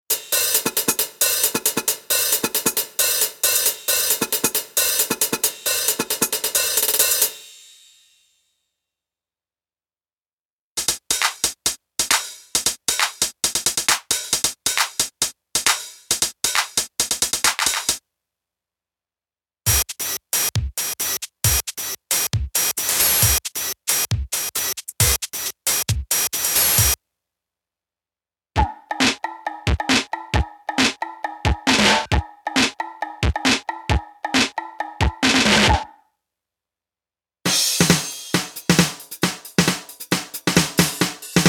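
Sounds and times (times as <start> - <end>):
drum loops: 0.1 - 7.3, 10.8 - 18.0, 19.7 - 27.0, 28.6 - 35.9, 37.5 - 41.4.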